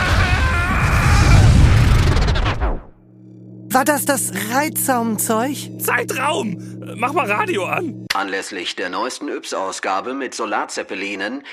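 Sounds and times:
loud rumbling explosion sound effect: 0.0 - 2.6
speech: 3.8 - 11.5.

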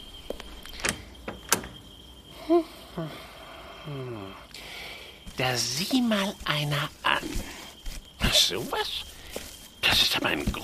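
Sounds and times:
door opening: 0.3 - 1.8
door latch and handle clicks: 0.7 - 1.8
speech: 2.5 - 3.3, 3.9 - 4.4, 5.4 - 7.5, 8.3 - 9.1, 9.9 - 10.6
person making short vocal sounds: 3.8 - 4.4.

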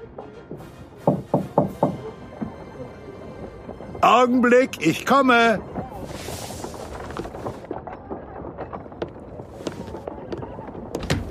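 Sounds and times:
knocking on the door of a gunsmith's workshop: 1.0 - 2.1
speech: 4.0 - 5.7.

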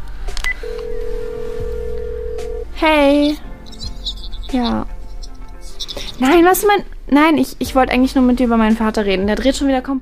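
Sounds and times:
long steady mid-pitched telephone tone: 0.5 - 2.7
speech: 2.8 - 3.5, 4.5 - 4.9, 6.2 - 10.0.

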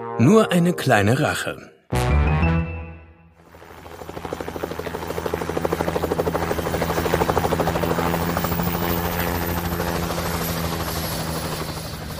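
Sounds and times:
speech: 0.2 - 1.7
helicopter engine whine: 3.5 - 12.1
helicopter rotor beating while landing: 3.5 - 12.1.

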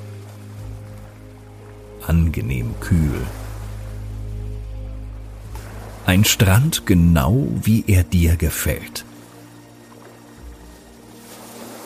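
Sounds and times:
ocean waves washing onto a beach: 0.0 - 11.8
low rumble: 1.8 - 7.4
speech: 2.1 - 3.4, 6.1 - 9.1.

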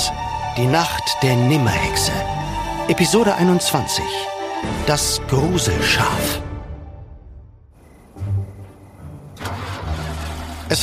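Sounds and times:
speech: 0.6 - 6.5
old car engine cranking and sputtering without catching: 9.3 - 10.8.

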